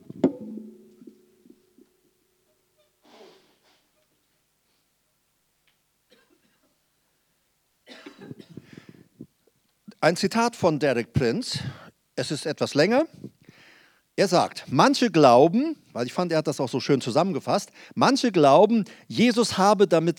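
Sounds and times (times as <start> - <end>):
person blowing nose: 3.0 - 4.0
speech: 10.0 - 13.2, 14.2 - 20.1.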